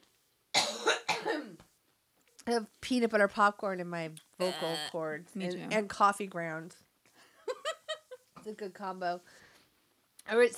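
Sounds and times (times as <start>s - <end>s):
harsh raspy coughing: 0.6s - 1.6s
speech: 2.5s - 6.8s, 8.4s - 9.4s, 10.3s - 10.5s.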